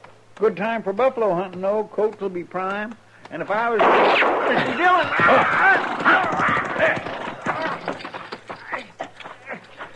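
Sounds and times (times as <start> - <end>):
speech: 0.4 - 7.2
gunshot: 3.8 - 5.9
hoofbeats clip-clopping: 4.7 - 9.9
horse whinnying after being shot: 4.8 - 8.1.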